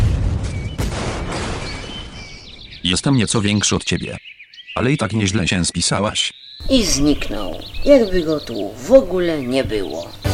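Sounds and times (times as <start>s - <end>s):
sound-effect explosion of a beheaded creature: 0.0s - 2.7s
speech: 2.8s - 10.2s.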